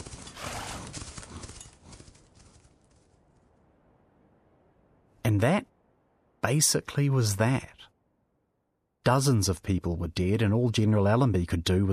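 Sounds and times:
horse hooves galloping: 0.0s - 3.2s
horse whinnying: 0.3s - 1.0s
speech: 5.3s - 5.7s, 6.4s - 7.9s, 9.0s - 11.9s.

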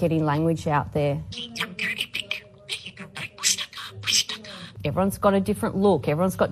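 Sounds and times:
speech: 0.0s - 2.2s, 4.8s - 6.5s
blue budgerigar chirping and warbling in Australia: 1.4s - 4.5s.

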